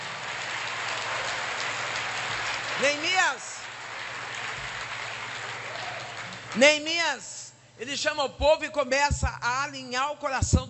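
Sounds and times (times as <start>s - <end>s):
audience applauding: 0.0s - 6.6s
speech: 2.8s - 3.6s, 6.5s - 10.6s.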